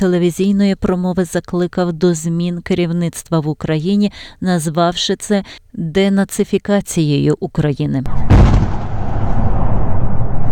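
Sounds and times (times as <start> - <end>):
speech: 0.0 - 8.8
explosions: 8.1 - 10.5
gunfire: 8.1 - 10.5.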